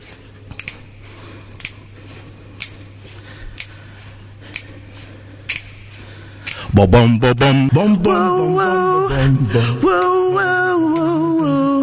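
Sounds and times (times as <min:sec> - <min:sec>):
low hum: 0:00.0 - 0:11.8
beatboxer mouth clicks: 0:00.5 - 0:01.0, 0:01.6 - 0:02.0, 0:02.6 - 0:02.9, 0:04.5 - 0:04.7, 0:05.5 - 0:06.8, 0:10.8 - 0:11.8
speech: 0:06.8 - 0:11.3.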